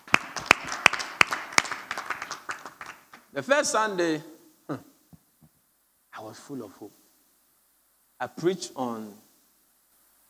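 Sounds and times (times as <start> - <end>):
group clapping for a pastor: 0.0 - 3.3
speech: 3.4 - 4.9, 6.2 - 7.0, 8.2 - 9.3.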